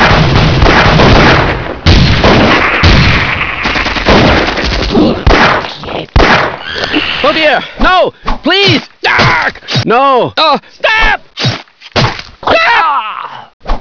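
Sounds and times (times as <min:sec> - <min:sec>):
heavy gunfire: 0:00.0 - 0:06.6
speech: 0:07.5 - 0:13.7.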